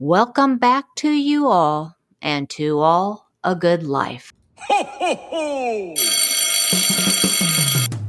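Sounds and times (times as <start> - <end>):
speech: 0.0 - 7.8
laughter: 4.6 - 6.0
school dismissal bell ringing: 6.0 - 7.9.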